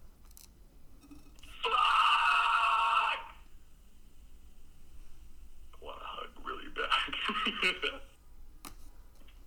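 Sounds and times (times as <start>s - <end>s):
man screaming: 1.5s - 3.5s
man laughing in breathy bursts: 1.6s - 3.3s, 6.8s - 8.2s.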